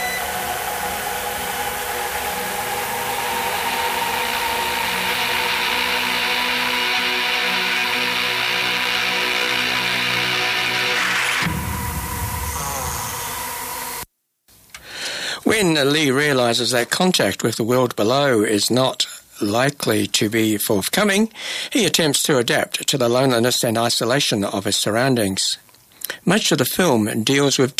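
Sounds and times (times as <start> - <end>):
crackling radio interference static: 0.0 - 14.0
droning electronic whines: 0.0 - 14.1
speech: 15.8 - 27.7.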